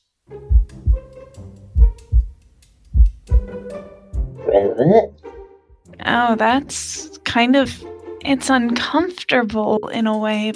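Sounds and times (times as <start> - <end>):
deep heartbeat sound effect: 0.5 - 1.1, 1.8 - 3.6
brief vocal sound: 4.5 - 5.1
speech: 4.8 - 5.1, 6.2 - 10.5.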